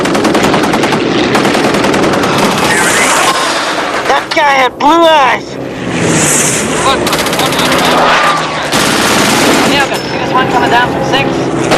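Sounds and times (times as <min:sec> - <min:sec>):
machine gun fire during a fighter plane attack: 0:00.0 - 0:03.8, 0:07.0 - 0:09.8
speech: 0:04.5 - 0:08.4, 0:09.5 - 0:11.7.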